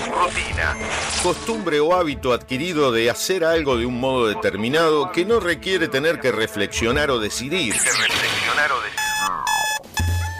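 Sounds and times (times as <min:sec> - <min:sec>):
speech: 0:00.2 - 0:08.8
loud electronic alarm clock ringing in buzzy bursts: 0:08.8 - 0:10.3.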